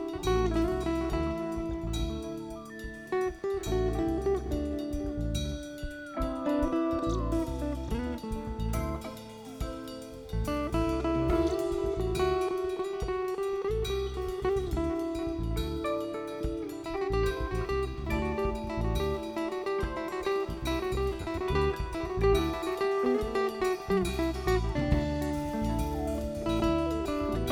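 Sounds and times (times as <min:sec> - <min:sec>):
live music jam at Rialto Theatre Tucson AZ: 0:00.0 - 0:27.4.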